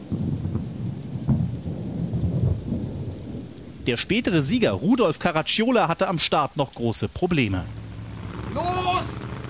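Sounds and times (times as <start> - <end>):
sharp crack of thunder: 0.0 - 5.5, 7.6 - 9.4
heavy rain pouring at a motor race: 0.0 - 9.4
low thunder rumbling: 0.0 - 9.4
speech: 3.9 - 7.8.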